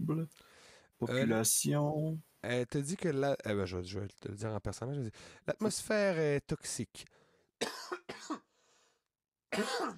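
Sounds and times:
speech: 0.1 - 8.4, 9.6 - 9.9
person coughing harshly: 7.6 - 8.5, 9.5 - 9.9.

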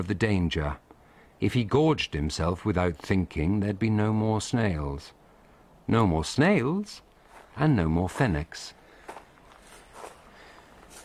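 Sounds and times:
speech: 0.0 - 0.8, 1.4 - 5.2, 5.9 - 8.8
quiet steady hiss: 0.0 - 11.0
soft footsteps crunching on loose ground: 7.2 - 11.0.

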